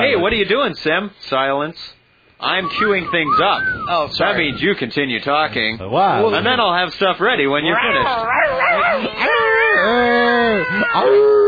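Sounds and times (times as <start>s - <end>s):
speech: 0.2s - 11.4s
cat yowl: 8.0s - 11.4s.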